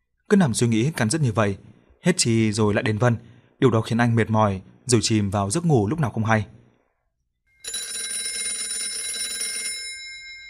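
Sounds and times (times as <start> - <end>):
speech: 0.3 - 6.6
alarm clock ringing with bright rapid metallic ring: 7.5 - 10.4.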